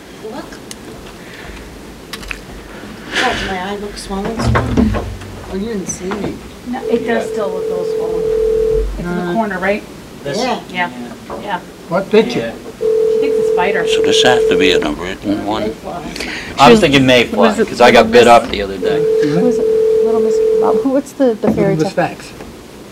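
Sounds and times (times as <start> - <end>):
speech: 0.2 - 0.7, 3.2 - 8.4, 9.0 - 12.6, 13.6 - 22.4
clattering knocks: 4.1 - 6.4
phone ringback tone on an outgoing call: 6.8 - 9.0, 12.8 - 14.9, 18.8 - 20.9.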